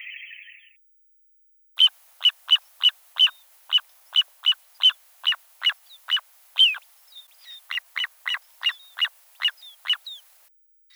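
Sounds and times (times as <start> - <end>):
little ringed plover Charadrius dubius calling: 1.8 - 10.4.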